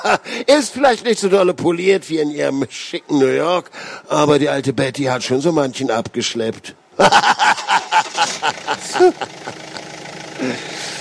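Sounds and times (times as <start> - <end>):
laughter: 0.0 - 0.3, 7.0 - 10.8
speech: 0.0 - 7.6, 8.4 - 9.6, 10.4 - 10.9
old tow truck engine running during a short drive: 7.6 - 10.9.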